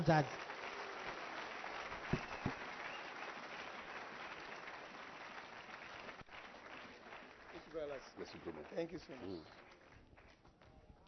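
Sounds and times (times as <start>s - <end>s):
speech: 0.0s - 0.5s, 8.0s - 9.7s
crowd applauding: 0.0s - 11.0s
sharp louder claps: 1.9s - 3.0s.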